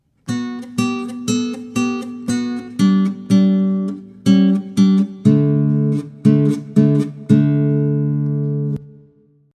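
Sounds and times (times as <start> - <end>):
classical guitar improvised solo: 0.1 - 9.3.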